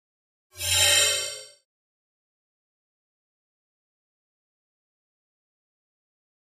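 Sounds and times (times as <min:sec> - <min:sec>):
electronic mouse over sound: 0:00.6 - 0:01.6.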